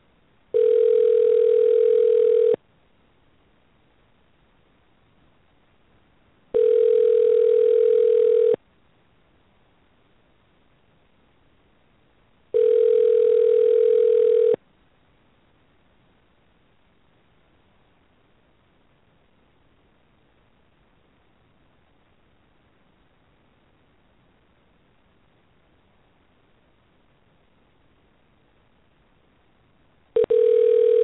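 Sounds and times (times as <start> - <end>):
electronic ringback tones of an outgoing phone call: 0.5 - 2.6, 6.5 - 8.6, 12.6 - 14.6, 30.2 - 31.0.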